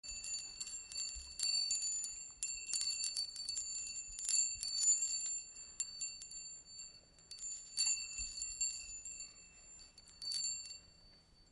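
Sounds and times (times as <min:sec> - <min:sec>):
handbell ringing: 0:00.0 - 0:11.5.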